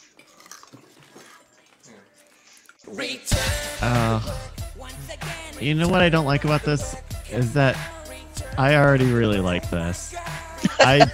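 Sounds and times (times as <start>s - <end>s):
man biting and chewing something crunchy: 0.0s - 2.9s
speech: 2.9s - 8.0s, 8.6s - 11.1s
laughter: 10.6s - 11.1s.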